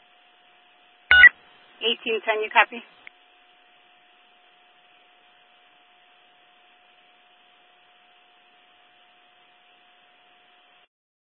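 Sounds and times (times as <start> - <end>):
telephone keypad dialing tone from a department phone: 1.1 - 1.3
speech: 1.8 - 3.0.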